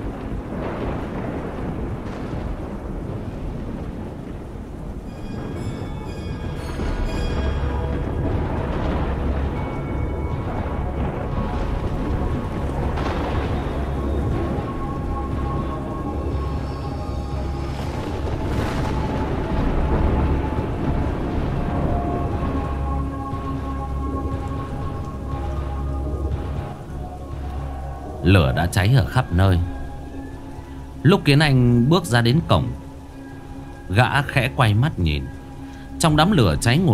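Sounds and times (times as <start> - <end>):
deep rumbling thunder in a thunderstorm: 0.0 - 36.9
steady rain in a thunderstorm: 0.0 - 36.9
speech: 28.3 - 29.8, 31.0 - 32.8, 33.9 - 35.4, 36.0 - 36.9.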